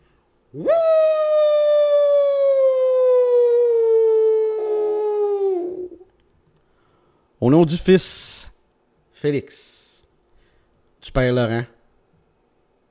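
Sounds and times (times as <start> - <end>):
speech: 0.5 - 1.0, 7.5 - 8.4, 9.2 - 9.8, 11.1 - 11.8
person imitating a wolf howl: 0.5 - 6.1.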